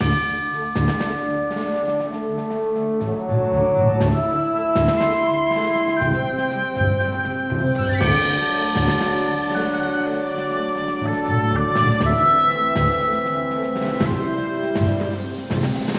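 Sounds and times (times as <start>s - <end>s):
background music: 0.0s - 15.9s.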